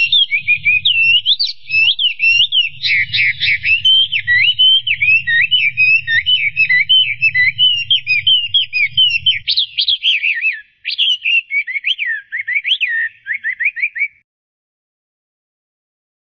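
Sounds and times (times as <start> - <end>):
low rumble: 0.0 - 9.5
Chinese hwamei song of varied whistled phrases: 0.0 - 14.2.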